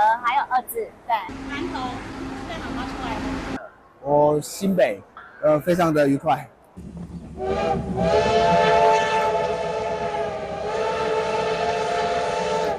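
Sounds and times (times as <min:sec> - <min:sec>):
steam train passing through rice fields in Taiwan: 0:01.2 - 0:03.6, 0:06.8 - 0:12.7
speech: 0:04.1 - 0:09.0
black steam locomotive whistle in Taiwan: 0:07.4 - 0:12.7.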